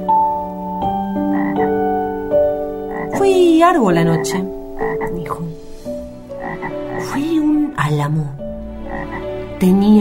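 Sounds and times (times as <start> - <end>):
group of toads croaking in the morning: 0.0 - 7.9, 8.6 - 9.7
speech: 3.6 - 4.6, 7.0 - 8.4, 9.0 - 9.9.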